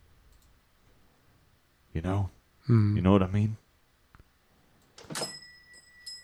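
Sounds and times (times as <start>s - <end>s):
speech: 2.0s - 3.6s
elevator door sliding open: 5.0s - 5.4s.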